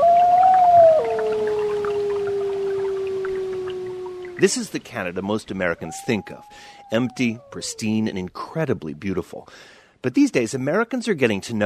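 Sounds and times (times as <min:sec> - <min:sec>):
gray wolf howling on the banks of the Rupert River in Quebec: 0:00.0 - 0:04.6, 0:05.6 - 0:08.3
speech: 0:04.4 - 0:11.6.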